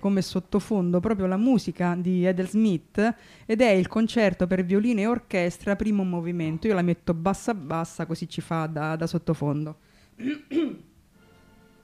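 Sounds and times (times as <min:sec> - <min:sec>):
speech: 0:00.0 - 0:10.9
person with a slight cough coughing: 0:10.2 - 0:11.0.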